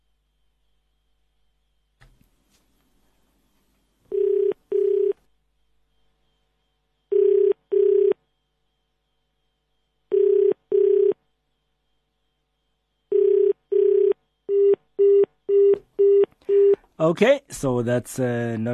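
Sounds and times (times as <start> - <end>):
telephone ringback tone in double bursts: 4.0 - 5.3, 7.1 - 8.4, 10.1 - 11.2, 13.1 - 16.8
speech: 17.0 - 18.7.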